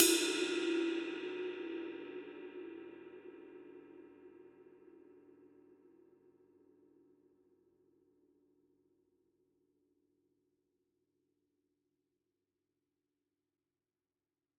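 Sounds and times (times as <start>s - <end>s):
general purpose ride cymbal: 0.0s - 2.1s.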